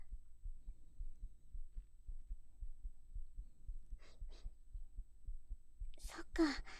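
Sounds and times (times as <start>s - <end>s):
young man's steady heartbeat: 0.0s - 6.7s
soft breaths: 3.7s - 6.7s
speech: 6.1s - 6.7s.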